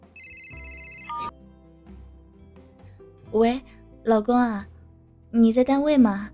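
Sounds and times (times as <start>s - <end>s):
telephone ringtone ringing: 0.0s - 1.3s
speech: 3.3s - 4.7s, 5.3s - 6.3s.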